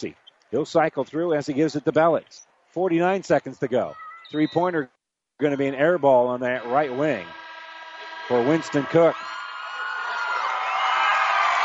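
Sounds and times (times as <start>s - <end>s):
speech: 0.0s - 7.4s, 8.3s - 9.3s
large basketball crowd cheering: 6.6s - 11.6s.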